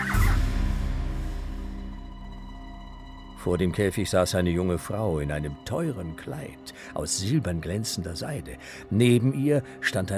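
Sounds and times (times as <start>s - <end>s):
parrot gobbling call: 0.0s - 0.4s
steady low rumble: 0.0s - 4.2s
speech: 3.4s - 10.1s.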